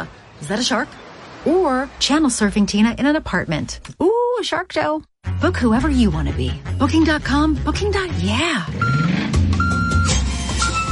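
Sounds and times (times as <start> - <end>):
speech: 0.0 - 9.0
truck reversing beeps: 8.8 - 10.9.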